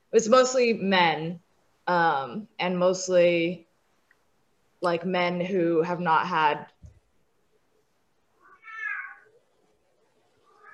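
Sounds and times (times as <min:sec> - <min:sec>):
speech: 0:00.1 - 0:03.7, 0:04.8 - 0:06.7
cat yowling at a door: 0:08.4 - 0:09.3, 0:10.5 - 0:10.7.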